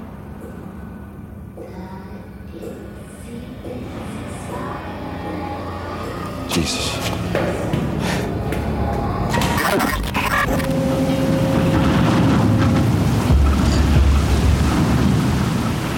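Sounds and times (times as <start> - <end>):
ferry engine drone crossing to Staten Island: 0.0 - 15.9
speech: 6.6 - 7.7
water wash from a ferry: 10.7 - 15.9.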